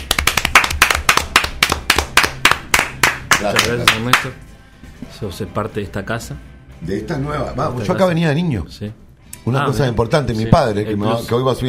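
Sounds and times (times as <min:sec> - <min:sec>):
audience applause at a live show: 0:00.0 - 0:04.2
speech: 0:03.4 - 0:04.5, 0:05.2 - 0:11.6.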